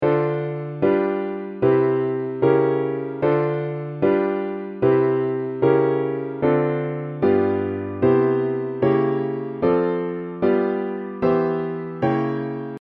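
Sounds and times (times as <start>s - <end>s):
piano chords: 0.0s - 12.8s.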